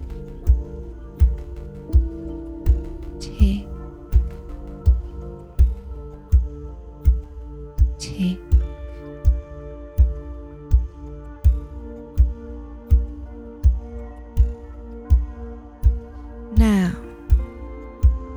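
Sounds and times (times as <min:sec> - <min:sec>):
clock ticking: 0:00.0 - 0:09.4, 0:16.6 - 0:18.3
soft sustained musical drone: 0:00.0 - 0:18.3.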